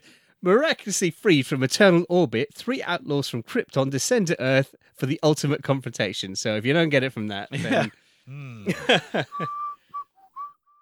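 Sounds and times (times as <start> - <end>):
speech: 0.4 - 9.6
laughter: 7.5 - 9.6
short voiced sounds: 8.3 - 8.7
person whistling a short steady single note: 9.0 - 10.8.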